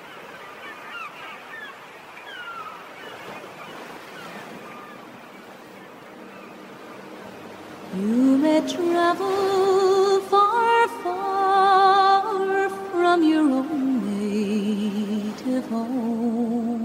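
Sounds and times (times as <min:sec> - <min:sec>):
honking bird calls: 0:00.0 - 0:09.4
sea waves washing on shore: 0:00.0 - 0:16.8
speech: 0:08.0 - 0:09.5.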